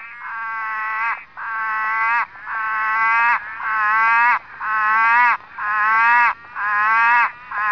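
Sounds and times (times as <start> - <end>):
red-eyed tree frog Litoria chloris droning moans: 0.0 - 7.7.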